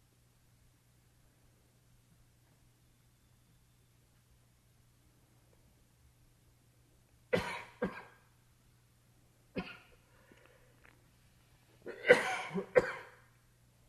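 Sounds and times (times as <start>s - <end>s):
several people coughing: 7.4s - 8.1s, 11.9s - 13.2s.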